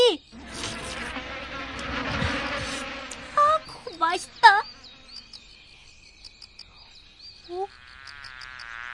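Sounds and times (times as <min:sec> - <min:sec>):
mosquito buzzing: 0:00.2 - 0:05.8, 0:07.5 - 0:08.9.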